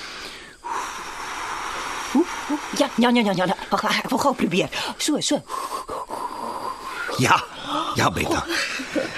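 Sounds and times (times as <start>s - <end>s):
breathy rush of air blown through lips pursed as if to whistle: 0.0s - 3.2s, 5.5s - 8.0s
speech: 2.2s - 5.9s, 7.2s - 9.1s
laughter: 8.1s - 9.1s.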